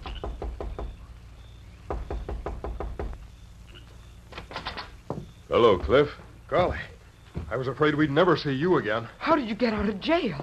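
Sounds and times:
low hum: 0.0 - 10.4
soft knocking on a side door: 0.1 - 1.0, 1.9 - 3.2, 5.0 - 7.7
speech: 5.5 - 6.9, 7.5 - 10.4.

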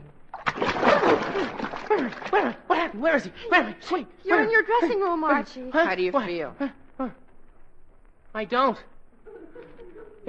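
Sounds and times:
bucket of water splashed on someone: 0.3 - 2.7
speech: 2.4 - 7.2, 8.4 - 8.9
laughter: 9.2 - 10.2.

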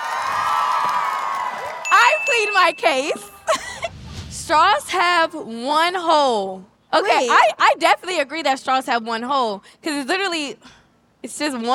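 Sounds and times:
audience screaming and cheering: 0.0 - 2.6
speech: 2.1 - 3.3, 4.5 - 11.7.

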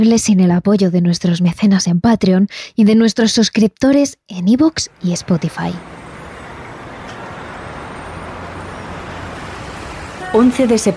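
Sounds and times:
speech: 0.0 - 6.0, 10.3 - 10.9
dense city traffic roaring in the downtown New York City business district: 4.5 - 10.9
low rumbling from buses or trucks: 4.5 - 10.9.

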